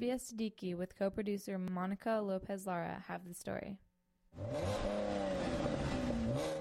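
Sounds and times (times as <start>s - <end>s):
speech: 0.0s - 5.3s
car engine revving at a car show: 4.4s - 6.5s.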